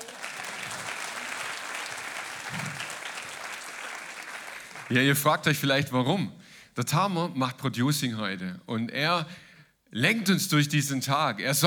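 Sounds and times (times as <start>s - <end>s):
group applause with dense rapid clapping: 0.0s - 5.2s
speech: 4.9s - 11.6s.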